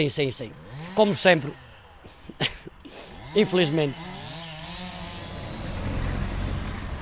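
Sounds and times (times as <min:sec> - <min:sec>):
speech: 0:00.0 - 0:01.6, 0:02.4 - 0:02.6, 0:03.4 - 0:04.1
heavy articulated lorry engine rumbling by the roadside: 0:00.0 - 0:07.0
broad hiss of road noise: 0:00.2 - 0:07.0
laughter: 0:02.1 - 0:03.1.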